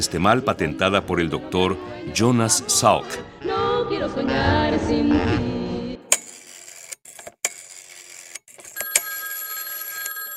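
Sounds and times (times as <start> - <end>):
speech: 0.0 - 5.6
telephone ringing with bright metallic bell tone: 7.5 - 10.3.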